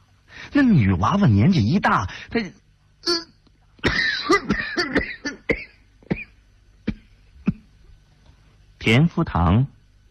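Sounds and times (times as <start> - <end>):
speech: 0.5 - 3.2, 8.9 - 9.8
violent coughing after sniffing tobacco: 3.8 - 7.8.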